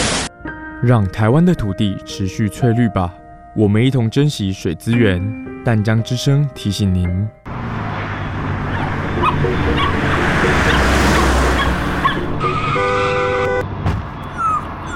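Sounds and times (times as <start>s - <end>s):
speech: 0.8s - 7.5s, 9.4s - 9.9s
engine noise: 7.5s - 14.9s
loud street traffic: 7.5s - 14.9s
car horn honking: 7.9s - 13.7s
dog yelping and whimpering after being hit by a car: 8.7s - 9.9s, 11.6s - 12.2s, 14.2s - 14.9s.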